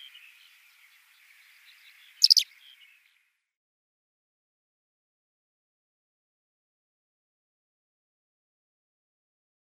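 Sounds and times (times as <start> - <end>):
short-toed lark dry triple chirp call: 0.0 - 3.0.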